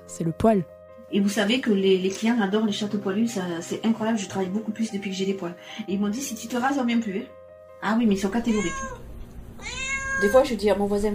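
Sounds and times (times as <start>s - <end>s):
speech: 0.2s - 11.1s
cat meowing: 8.3s - 10.6s.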